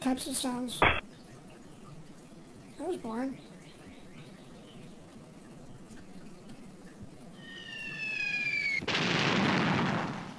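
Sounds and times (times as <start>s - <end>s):
speech: 0.0s - 1.0s, 2.8s - 3.5s
high falling whistle with several tones: 7.4s - 8.8s
synthesized bomb explosion blast: 8.8s - 10.3s.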